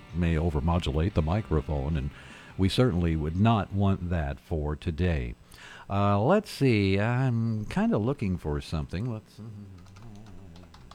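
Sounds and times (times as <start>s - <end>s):
low steady hum: 0.0s - 10.9s
speech: 0.2s - 9.9s
typing on a computer keyboard: 9.8s - 10.9s.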